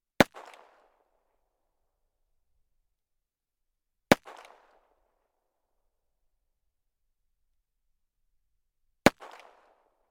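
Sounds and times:
1911 gun: 0.2 - 1.1, 4.1 - 5.1, 9.1 - 10.0.

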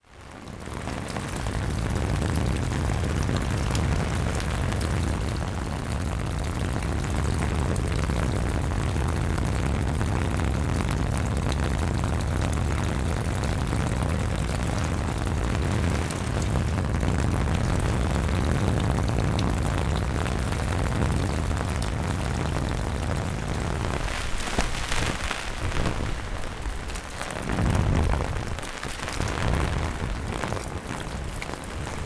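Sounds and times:
rain on an umbrella: 0.0 - 32.0
wind: 0.0 - 32.0
umbrella movement: 23.4 - 32.0.

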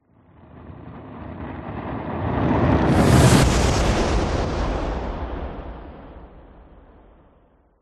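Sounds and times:
cinematic fireball whoosh with fizz: 1.6 - 6.8.

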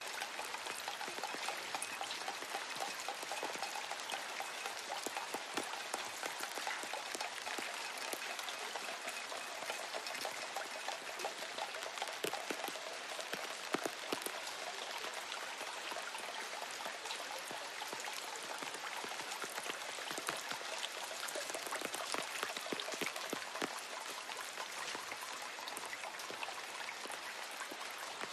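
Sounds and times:
moderate dripping rain in a city: 0.0 - 28.3.

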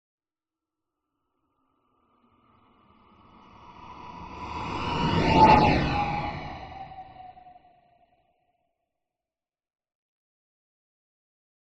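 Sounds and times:
science fiction spacecraft passing by: 3.8 - 7.7.

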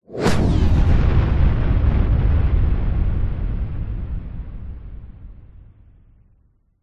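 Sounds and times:
incoming warfare missile bomb whoosh: 0.0 - 2.2
large explosion: 0.1 - 6.5.

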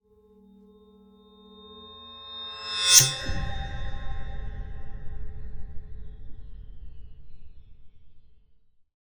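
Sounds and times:
metallic swell to impact: 1.9 - 6.2.

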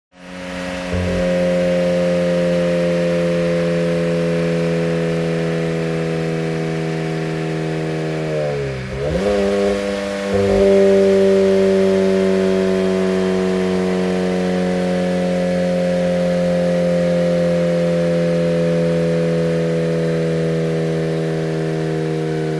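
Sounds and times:
Toyota GT86 engine braking: 0.2 - 22.5.

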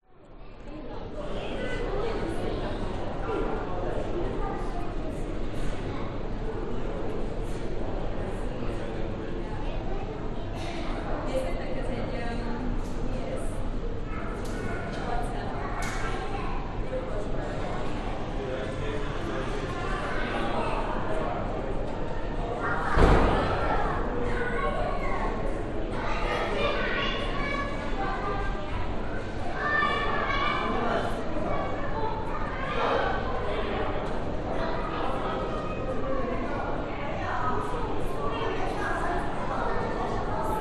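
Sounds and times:
busy indoor museum crowd of parents and children in Brisbane: 0.0 - 40.6.

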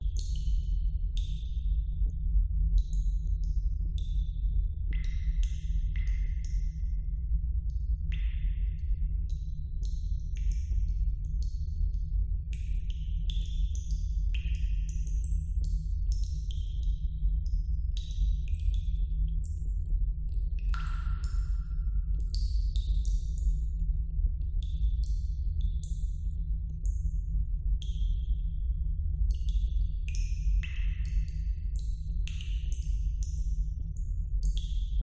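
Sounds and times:
underground cave nature ambience: 0.0 - 35.0.

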